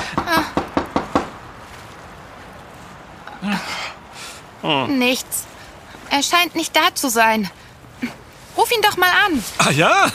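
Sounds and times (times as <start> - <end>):
firm knocks on a locked door: 0.2 - 1.4
speech: 4.6 - 5.5, 6.1 - 10.1.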